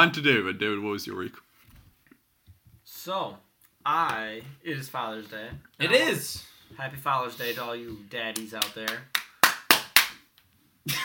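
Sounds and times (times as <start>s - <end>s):
speech: 0.0s - 1.5s, 3.0s - 9.2s, 10.8s - 11.0s
sharp hand claps: 8.1s - 10.4s.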